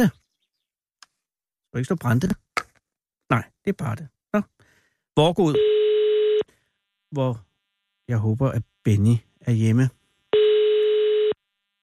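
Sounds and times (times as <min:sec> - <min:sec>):
speech: 0:00.0 - 0:00.2, 0:01.7 - 0:02.4, 0:03.3 - 0:04.6, 0:05.2 - 0:05.9, 0:07.1 - 0:07.5, 0:08.1 - 0:10.0
telephone ringing tone during outgoing call: 0:05.5 - 0:06.5, 0:10.3 - 0:11.4.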